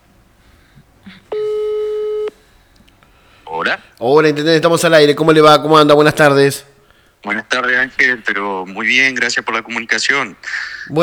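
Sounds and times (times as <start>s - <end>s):
telephone busy signal on a failed call: 1.3s - 2.4s
speech: 3.7s - 11.0s.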